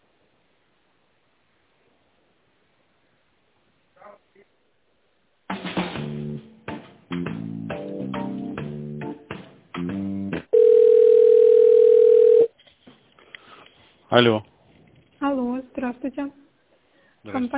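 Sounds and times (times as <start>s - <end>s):
short choppy telephone tone bursts while placing a call: 10.6s - 12.5s
speech: 14.1s - 14.5s, 15.9s - 16.4s, 17.2s - 17.5s.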